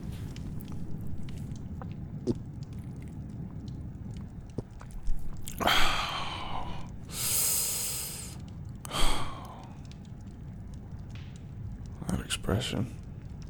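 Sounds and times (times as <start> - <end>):
louder slurping sip as someone drinks and swallows: 0.0 - 3.2, 4.6 - 9.7
soft wet mouth clicks and gulps: 0.0 - 12.0
low rumble: 0.0 - 12.3.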